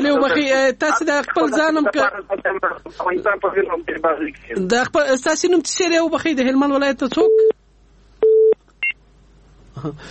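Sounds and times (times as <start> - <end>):
speech: 0.1 - 7.6, 9.8 - 10.0
telephone tones as a radio phone-in call drops: 8.2 - 9.0.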